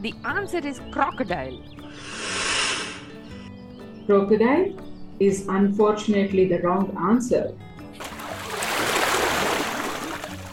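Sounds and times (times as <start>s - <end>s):
speech: 0.0s - 2.4s, 4.1s - 7.7s
rushing water: 8.0s - 10.5s.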